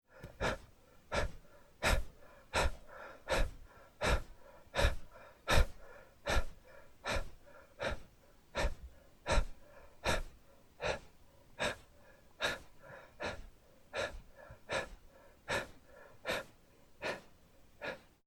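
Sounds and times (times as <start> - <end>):
slow breathing: 0.0 - 18.2.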